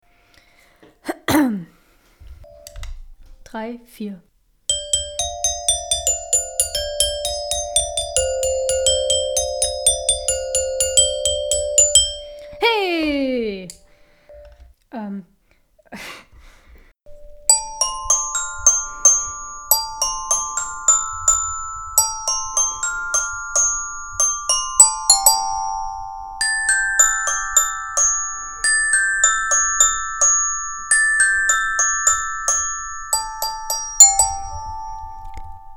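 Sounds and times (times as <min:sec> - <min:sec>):
speech: 0:03.5 - 0:04.3
bright glockenspiel playing a cheerful melody: 0:04.7 - 0:14.6, 0:17.1 - 0:35.7
swooping tones: 0:11.8 - 0:13.9.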